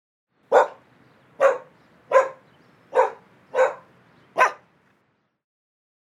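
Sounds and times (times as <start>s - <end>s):
dog barking: 0.5s - 0.8s, 1.4s - 4.7s.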